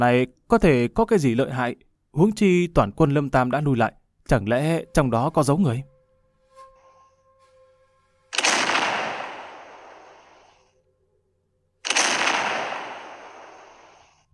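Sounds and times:
speech: 0.0s - 5.9s
cannon blasts during a battle by city walls: 8.4s - 10.5s, 11.8s - 14.2s.

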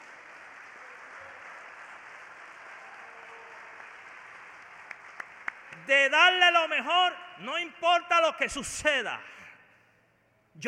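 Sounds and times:
applause at a church worship service: 0.0s - 6.1s
speech: 5.9s - 9.4s.

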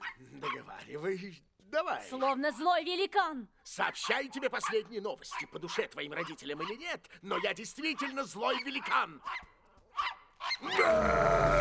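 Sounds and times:
speech: 0.2s - 9.5s, 10.6s - 11.5s
man growling at a puppy: 10.8s - 11.5s.

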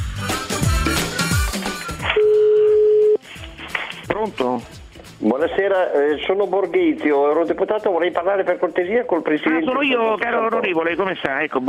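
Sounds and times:
music: 0.0s - 11.6s
telephone ringing tone of an outgoing call: 2.1s - 3.2s
speech: 4.3s - 11.6s.

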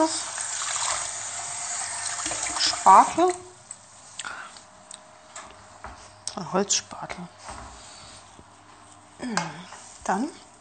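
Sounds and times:
speech: 0.0s - 0.3s, 2.6s - 3.5s, 6.4s - 7.7s, 9.2s - 10.4s
water running from a kitchen tap while a pan is rinsed: 0.0s - 3.6s.

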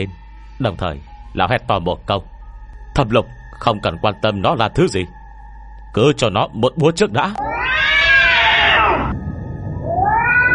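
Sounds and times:
speech: 0.0s - 2.3s, 3.0s - 5.2s, 5.9s - 7.9s
crowd of cats yowling inside a coffin at night: 7.2s - 9.2s, 9.8s - 10.5s.

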